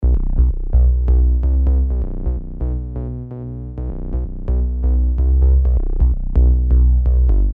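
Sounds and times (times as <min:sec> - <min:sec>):
synth bass: 0:00.0 - 0:07.5.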